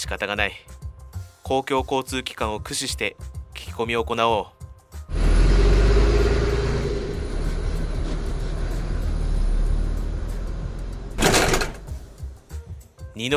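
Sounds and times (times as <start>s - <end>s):
speech: 0.1s - 0.8s, 1.4s - 5.2s, 13.2s - 13.3s
deep steady engine rumble inside a moving bus: 5.1s - 12.2s.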